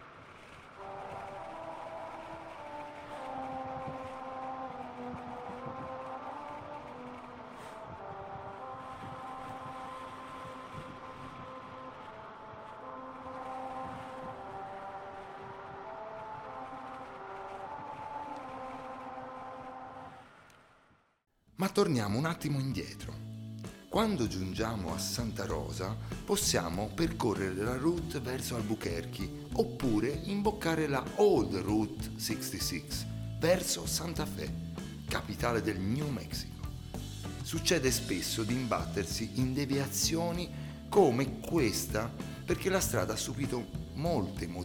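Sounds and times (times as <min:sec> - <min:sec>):
steady road rumble: 0:00.0 - 0:20.2
car tires droning melody on grooved musical road: 0:00.0 - 0:20.8, 0:22.8 - 0:44.6
speech: 0:21.6 - 0:23.3, 0:23.9 - 0:36.5, 0:37.5 - 0:44.6.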